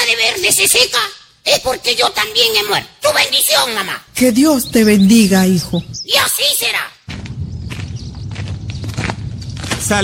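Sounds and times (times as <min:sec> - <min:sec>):
speech: 0:00.1 - 0:07.2, 0:09.8 - 0:10.0
low rumble: 0:07.1 - 0:09.8
footsteps walking: 0:07.1 - 0:09.9.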